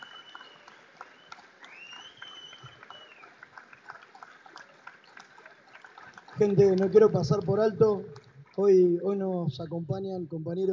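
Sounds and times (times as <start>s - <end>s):
whistle: 0.0s - 3.3s
audience clapping: 0.0s - 9.4s
speech: 6.4s - 10.7s.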